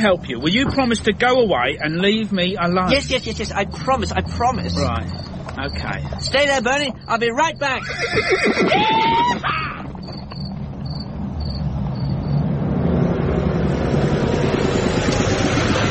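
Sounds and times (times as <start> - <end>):
speech: 0.0 - 9.6
insects chirping: 0.0 - 15.5
horse whinnying: 7.6 - 10.3.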